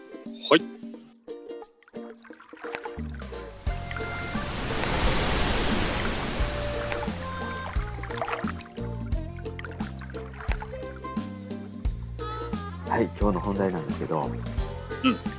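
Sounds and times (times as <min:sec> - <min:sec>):
speech: 0:00.3 - 0:00.8, 0:13.0 - 0:15.3
melodic music bed with a steady stepping bass line: 0:03.0 - 0:15.3
ocean surf waves breaking in a hissing rush: 0:03.6 - 0:08.4.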